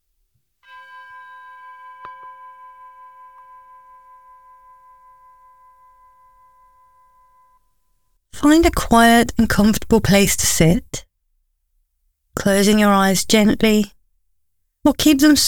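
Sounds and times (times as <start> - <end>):
meditation chime struck signaling the beginning of a meditation: 0.6 - 8.0
speech: 8.4 - 11.1, 12.4 - 14.0, 14.8 - 15.4.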